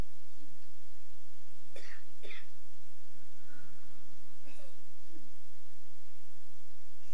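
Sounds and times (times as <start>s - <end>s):
faint hum: 0.0s - 7.1s
person coughing softly during a guided relaxation session: 1.8s - 2.5s.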